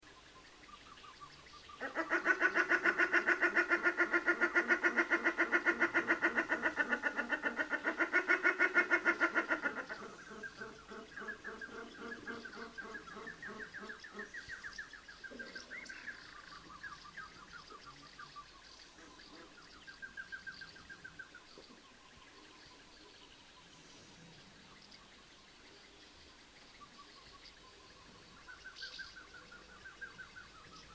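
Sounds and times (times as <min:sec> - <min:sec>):
shelduck calling: 0:01.8 - 0:14.3.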